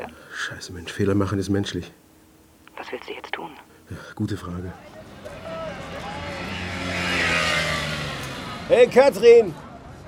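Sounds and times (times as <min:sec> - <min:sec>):
speech: 0:00.4 - 0:02.0, 0:02.9 - 0:05.0, 0:08.7 - 0:09.6
car engine revving as the vehicle pulls up: 0:05.6 - 0:08.9.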